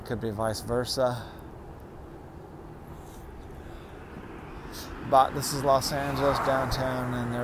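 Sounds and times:
urban noise: 0.0s - 7.4s
speech: 0.1s - 1.4s, 5.1s - 7.4s
helicopters hovering over downtown Los Angeles: 1.5s - 7.4s.

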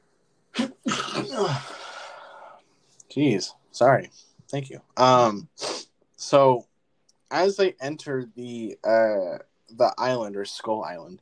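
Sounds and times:
loud sneeze: 0.6s - 1.7s
speech: 1.3s - 1.8s, 3.1s - 6.7s, 7.3s - 11.1s.

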